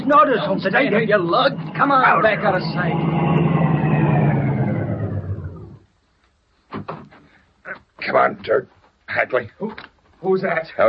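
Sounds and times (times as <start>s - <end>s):
car engine roaring: 0.0s - 6.0s
speech: 0.1s - 3.5s, 8.1s - 10.8s.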